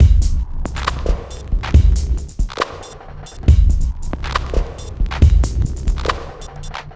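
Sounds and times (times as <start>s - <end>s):
138 BPM dubstep drum break loops: 0.0s - 6.9s.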